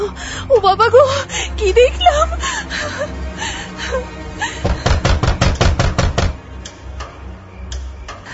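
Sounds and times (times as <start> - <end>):
speech: 0.2 - 4.0
heavy knocking on a door at night: 4.6 - 6.4.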